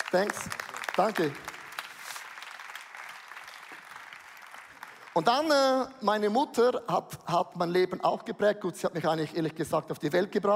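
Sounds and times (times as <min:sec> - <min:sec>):
audience clapping: 0:00.0 - 0:06.3
speech: 0:00.1 - 0:01.5, 0:05.2 - 0:10.5.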